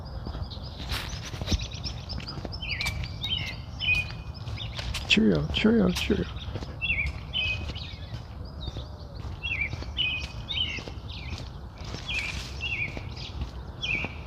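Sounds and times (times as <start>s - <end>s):
robin singing: 0.0s - 14.2s
soft knocks or footsteps: 0.1s - 14.2s
speech: 5.2s - 6.4s.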